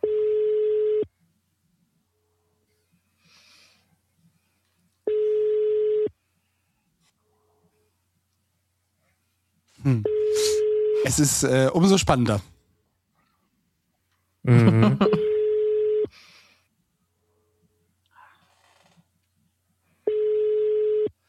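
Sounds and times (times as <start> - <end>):
telephone ringback tone: 0.0 - 1.1, 5.1 - 6.1, 10.0 - 11.2, 15.1 - 16.1, 20.1 - 21.1
faint breathing: 2.7 - 4.7, 16.1 - 16.8
speech: 11.1 - 12.5.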